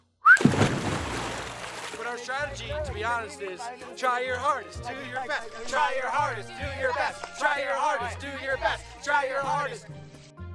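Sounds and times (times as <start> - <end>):
person giving a quick rising whistle: 0.2 - 0.5
speech: 2.1 - 10.0.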